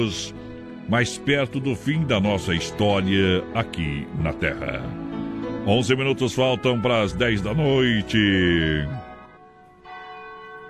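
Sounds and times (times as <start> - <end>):
speech: 0.0 - 5.0, 5.6 - 9.0
large church bell ringing: 9.8 - 10.6.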